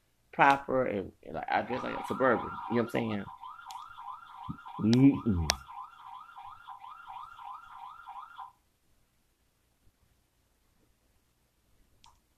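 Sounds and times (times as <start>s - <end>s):
speech: 0.4s - 3.4s, 4.5s - 5.7s
electronic alarm with rapid warbling tone: 1.5s - 8.5s.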